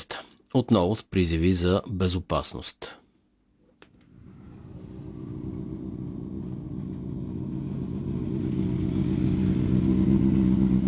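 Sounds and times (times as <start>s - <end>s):
speech: 0.5s - 3.0s
several motorcycle engines roaring and revving on streets of Varna: 4.5s - 10.8s.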